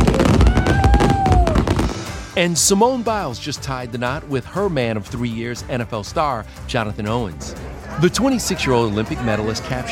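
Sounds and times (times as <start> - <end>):
firework whistling streak: 0.0 - 2.4
fireworks exploding in a crackling barrage of sharp pops: 0.0 - 2.8
speech: 2.4 - 9.9.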